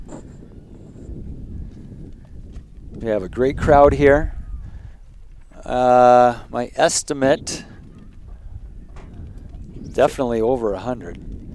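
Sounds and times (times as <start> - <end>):
wind buffeting the microphones at an outdoor women's football match: 0.0 - 11.5
speech: 3.0 - 4.4, 5.6 - 7.7, 10.0 - 11.3.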